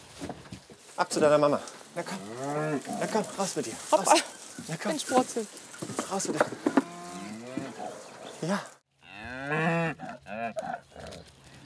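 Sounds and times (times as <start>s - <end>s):
speech: 1.0s - 6.8s, 8.4s - 8.8s
cattle herd mooing: 2.0s - 3.5s, 6.6s - 8.2s, 9.0s - 11.2s.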